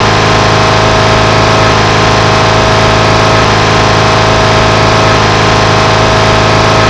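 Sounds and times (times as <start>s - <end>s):
petrol 4 cylinder engine: 0.0s - 6.8s.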